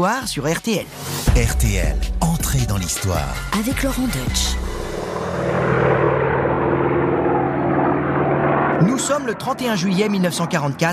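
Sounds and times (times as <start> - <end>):
speech: 0.0 - 4.8, 8.9 - 10.9
propeller airplane flying overhead across the sky: 3.4 - 10.9.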